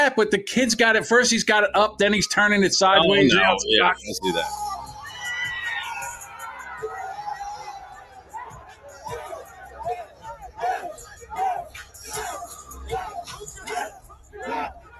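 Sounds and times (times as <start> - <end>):
speech: 0.0 - 4.7
crowd of kids yelling at a concert: 4.5 - 14.9.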